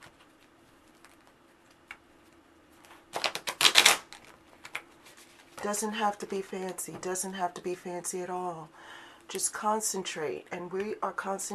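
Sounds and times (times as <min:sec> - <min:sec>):
tarot cards being shuffled: 0:00.0 - 0:05.7
speech: 0:05.6 - 0:11.5.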